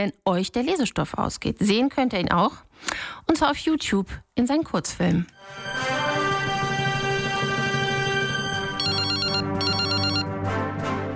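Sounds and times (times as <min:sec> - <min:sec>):
speech: 0:00.0 - 0:06.0
sustained tonal background: 0:05.3 - 0:11.1
telephone ringing for an incoming call: 0:08.7 - 0:10.3.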